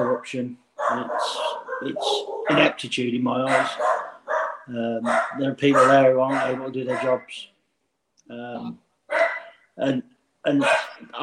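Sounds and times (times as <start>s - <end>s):
speech: 0.2s - 4.0s, 4.7s - 7.5s, 8.3s - 8.8s, 9.8s - 11.2s
dog whining yelp: 0.8s - 2.7s, 3.5s - 7.2s, 9.1s - 9.6s
dog barking: 0.8s - 2.8s, 3.4s - 7.2s, 9.1s - 9.6s, 10.6s - 11.1s.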